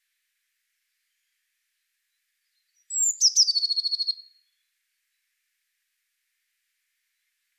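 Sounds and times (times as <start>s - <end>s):
Eurasian blue tit song: 2.5s - 4.3s.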